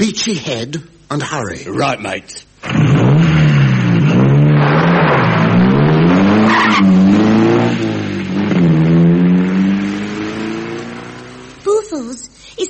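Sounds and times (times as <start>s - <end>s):
speech: 0.0s - 3.3s
car engine revving hard through gear changes: 2.6s - 11.8s
tyres squealing: 6.2s - 7.4s.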